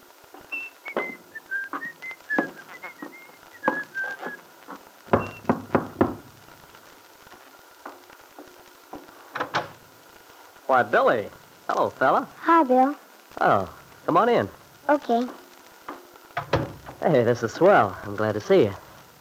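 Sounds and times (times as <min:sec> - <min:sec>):
footsteps climbing wooden steps: 0:00.3 - 0:09.7, 0:15.2 - 0:17.0
cheerful whistled tune: 0:00.5 - 0:04.4
speech: 0:10.7 - 0:15.4, 0:17.0 - 0:18.8.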